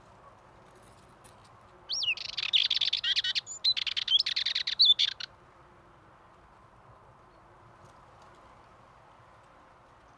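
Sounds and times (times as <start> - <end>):
male Dartford warbler singing at Pornic in Loire-Atlantique France: 1.9 - 5.3.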